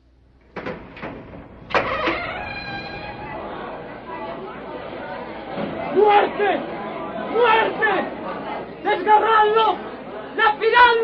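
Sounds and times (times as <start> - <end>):
heavy temple door creaking open: 0.4 - 5.9
heavy temple door bolt clunks: 0.5 - 3.5
murmur of voices: 1.9 - 11.0
speech: 6.0 - 6.7, 7.3 - 8.1, 9.0 - 11.0.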